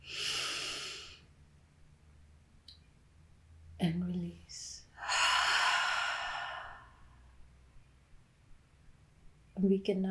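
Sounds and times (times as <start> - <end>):
slow deep inhale during a guided meditation: 0.0 - 1.2, 5.0 - 7.2
speech: 3.8 - 4.6, 9.6 - 10.0.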